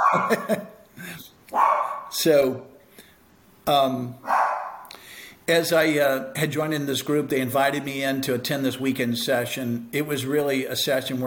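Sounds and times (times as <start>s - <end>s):
puppy barking: 0.0s - 0.5s, 1.5s - 2.1s, 4.2s - 4.9s
laughter: 0.0s - 1.2s
speech: 0.1s - 2.7s, 3.7s - 4.4s, 5.5s - 11.2s.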